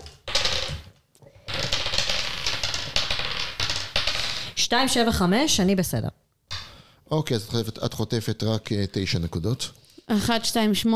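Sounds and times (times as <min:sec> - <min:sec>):
ten-sided dice rattling across a hard surface in a game: 0:00.2 - 0:00.9, 0:01.5 - 0:04.5
speech: 0:04.7 - 0:06.2, 0:07.1 - 0:10.9.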